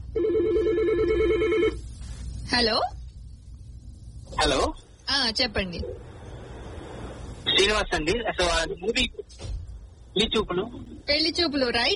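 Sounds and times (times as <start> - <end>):
telephone ring with warbling electronic trill: 0.1 - 1.8
speech: 2.5 - 3.0, 4.4 - 6.1, 7.6 - 11.9.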